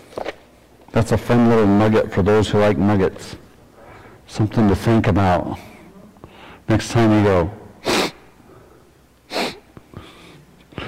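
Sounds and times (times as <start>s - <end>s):
speech: 1.0s - 3.4s, 4.3s - 5.7s, 6.7s - 7.6s
breathy sniffing through the nose: 7.8s - 8.2s, 9.3s - 10.8s.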